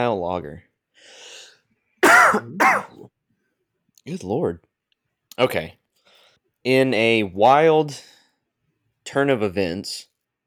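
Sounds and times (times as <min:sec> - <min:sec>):
speech: 0:00.0 - 0:01.2, 0:02.3 - 0:03.2, 0:04.0 - 0:04.7, 0:05.4 - 0:05.8, 0:06.6 - 0:08.1, 0:09.1 - 0:10.1
harsh loud throat clearing: 0:02.0 - 0:02.9.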